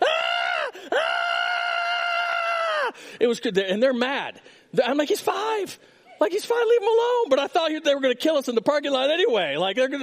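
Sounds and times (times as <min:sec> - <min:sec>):
voice imitating a child's shrill banshee-like screaming: 0:00.0 - 0:03.0
speech: 0:03.2 - 0:10.0.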